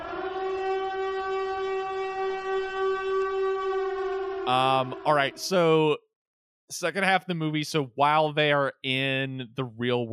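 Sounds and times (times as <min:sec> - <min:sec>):
loud siren droning at one steady pitch: 0:00.0 - 0:06.0
speech: 0:04.5 - 0:06.0, 0:06.7 - 0:10.1.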